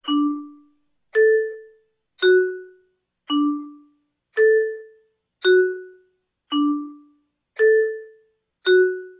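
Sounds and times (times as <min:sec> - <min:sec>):
vibraphone: 0:00.0 - 0:09.1.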